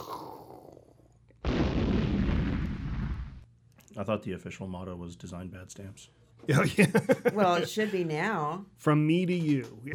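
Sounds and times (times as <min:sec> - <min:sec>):
loud explosion sound effect: 0:01.4 - 0:03.4
speech: 0:04.0 - 0:09.9.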